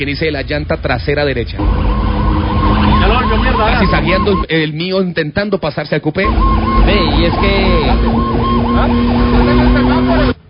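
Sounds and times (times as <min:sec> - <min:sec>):
speech: 0:00.0 - 0:02.0, 0:03.2 - 0:10.4
heavy road rumble: 0:00.0 - 0:10.4
ambulance siren wailing: 0:01.6 - 0:04.5, 0:06.2 - 0:10.4.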